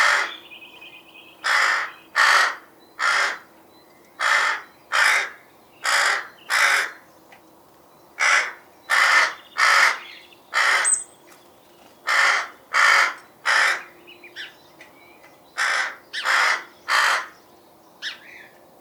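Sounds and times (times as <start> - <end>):
rook cawing: 0.0 - 0.4, 1.4 - 3.5, 4.2 - 7.0, 8.2 - 11.1, 12.0 - 14.5, 15.6 - 17.4.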